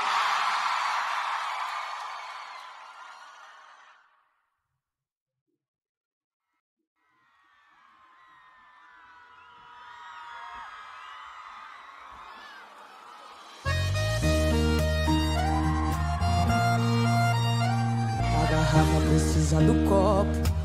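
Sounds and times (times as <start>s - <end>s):
crowd cheering and whooping: 0.0s - 4.0s, 7.3s - 14.0s, 15.0s - 19.1s
large crowd shouting and cheering: 0.0s - 4.1s, 7.2s - 19.6s.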